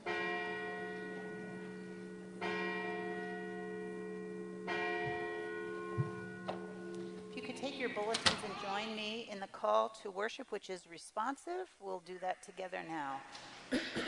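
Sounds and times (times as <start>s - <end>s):
church bell tolling: 0.0s - 9.1s
speech: 7.6s - 14.0s.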